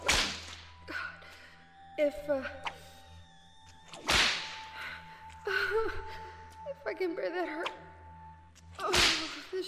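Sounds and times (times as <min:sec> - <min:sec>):
whip lash crack: 0:00.0 - 0:00.7, 0:03.9 - 0:04.6, 0:08.8 - 0:09.4
speech: 0:02.0 - 0:02.7, 0:05.7 - 0:06.2, 0:06.8 - 0:07.9, 0:08.8 - 0:09.6.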